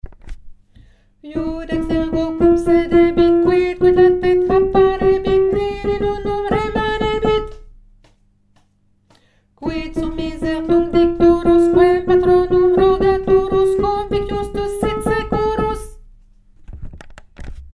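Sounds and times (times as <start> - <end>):
bass voice singing a chant: 1.3 - 7.5, 9.6 - 16.0.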